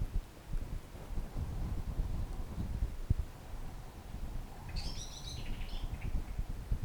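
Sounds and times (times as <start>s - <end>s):
steady rumbling wind buffeting the microphone outdoors: 0.0s - 6.8s
bird chirping: 4.7s - 6.3s.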